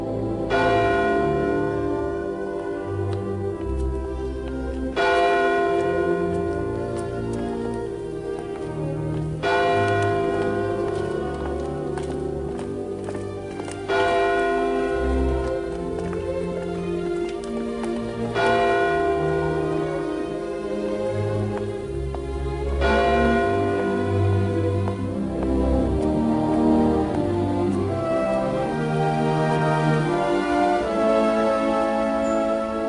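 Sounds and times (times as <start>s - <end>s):
church bells pealing: 0.0s - 32.8s.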